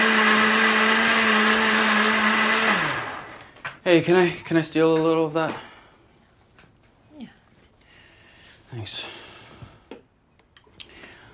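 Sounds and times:
blender running: 0.0s - 3.6s
speech: 3.9s - 5.7s, 8.7s - 9.2s.

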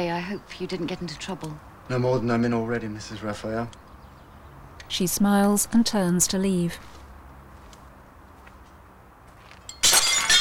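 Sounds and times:
speech: 0.0s - 3.8s, 4.9s - 7.0s
piece of glass thrown onto the ground shattering: 9.7s - 10.3s.

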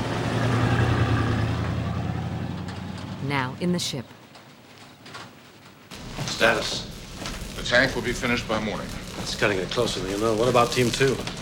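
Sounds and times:
truck engine rumbling as it drives off: 0.0s - 3.6s, 5.9s - 11.4s
broad road noise: 0.0s - 4.0s, 5.8s - 11.4s
speech: 3.3s - 4.2s, 6.4s - 6.9s, 7.6s - 11.4s.

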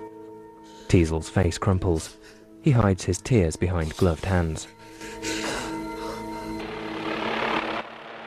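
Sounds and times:
speech: 0.9s - 5.3s
helicopter flying past in front of snowy mountains: 6.6s - 8.2s.

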